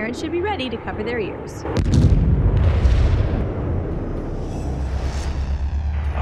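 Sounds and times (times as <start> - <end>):
speech: 0.1 - 3.1
rumbling explosion with heavy low-end boom: 1.7 - 6.1.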